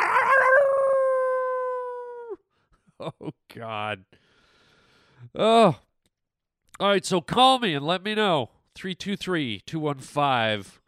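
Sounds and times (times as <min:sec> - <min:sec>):
wolf howling: 0:00.0 - 0:02.4
speech: 0:03.0 - 0:04.3, 0:05.2 - 0:05.9, 0:06.8 - 0:10.8.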